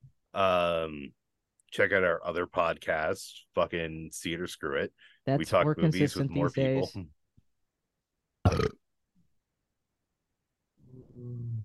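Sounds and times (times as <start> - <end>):
speech: 0.4 - 7.2
burp: 8.4 - 8.9.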